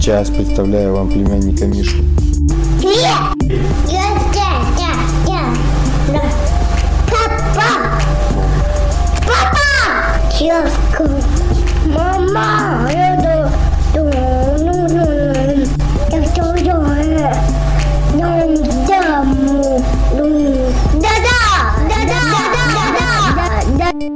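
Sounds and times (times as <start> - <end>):
speech: 0.0 - 4.2, 10.4 - 13.6
thumping low backing beat: 0.0 - 24.0
small boy yelling and wailing: 7.1 - 8.3, 9.2 - 23.9.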